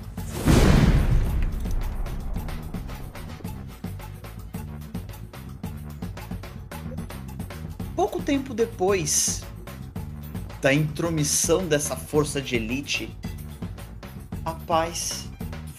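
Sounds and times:
rhythmic music: 0.0 - 15.7
loud explosion booming: 0.2 - 3.9
speech: 8.0 - 9.5, 10.6 - 13.2, 14.7 - 15.3.

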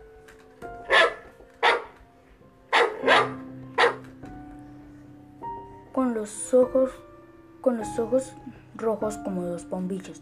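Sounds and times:
soft sustained musical drone: 0.0 - 10.2
dog barking in the streets of Tesalia: 0.8 - 2.0, 2.7 - 4.1
speech: 6.0 - 10.2.

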